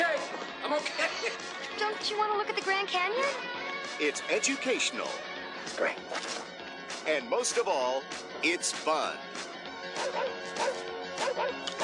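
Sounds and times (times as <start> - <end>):
speech: 0.7 - 6.4, 7.0 - 10.3
dog barking: 10.0 - 11.8.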